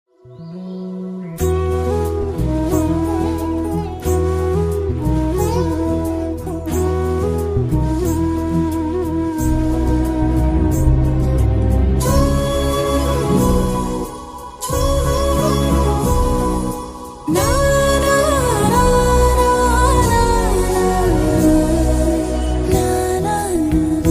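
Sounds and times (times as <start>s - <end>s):
flute background music ringtone: 0.2s - 24.0s.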